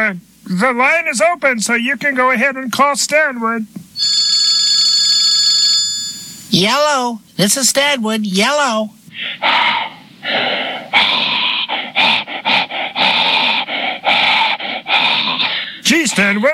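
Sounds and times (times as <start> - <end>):
speech: 0.1 - 4.4, 6.5 - 11.2, 16.2 - 16.5
telephone ringing with an electronic trill: 4.0 - 6.6
dog panting and snorting into a phone: 11.6 - 15.6.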